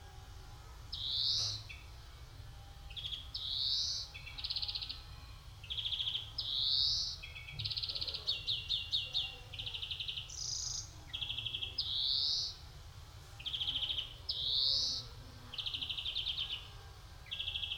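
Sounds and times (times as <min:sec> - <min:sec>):
European greenfinch Chloris chloris song of nasal wheezes and rattling trills: 0:00.8 - 0:17.7.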